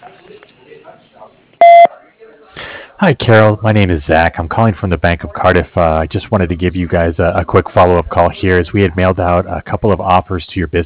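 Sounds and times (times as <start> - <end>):
answering machine beep after the outgoing greeting: 1.6 - 1.9
speech: 3.0 - 10.8.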